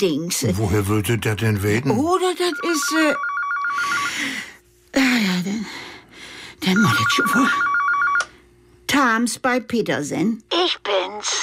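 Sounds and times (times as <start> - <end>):
speech: 0.0 - 5.9, 6.6 - 7.7, 8.9 - 11.4
steady hum: 0.0 - 11.4
telephone ringing with a rapid pulsed electronic trill: 2.2 - 4.4, 6.6 - 8.4.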